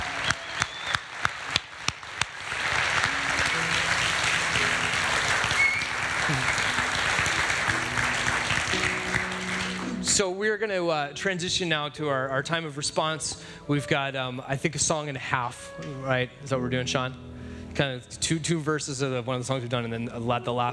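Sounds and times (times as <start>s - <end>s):
audience applauding after a baptism: 0.0s - 10.2s
faint voices and cheers: 5.4s - 6.8s
speech: 10.2s - 20.7s.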